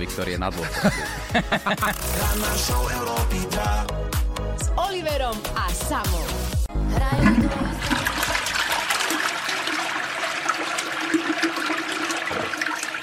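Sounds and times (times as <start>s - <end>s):
speech: 0.0s - 4.0s, 4.8s - 8.0s
laughter: 0.6s - 2.0s
toilet flushing: 7.1s - 13.0s
water trickling after toilet flush: 7.2s - 13.0s.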